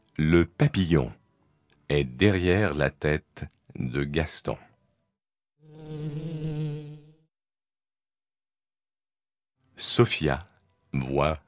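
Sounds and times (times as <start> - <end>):
speech: 0.2 - 1.2, 1.9 - 4.7, 9.8 - 11.4
single fly buzzing: 5.6 - 7.4.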